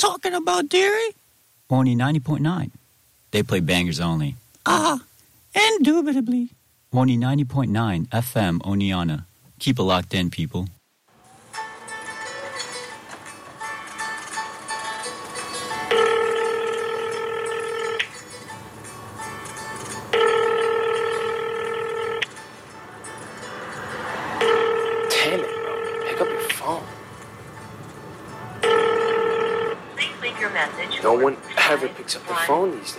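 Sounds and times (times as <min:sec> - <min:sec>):
speech: 0:00.0 - 0:10.8, 0:32.1 - 0:32.9
telephone ringing: 0:14.4 - 0:31.8.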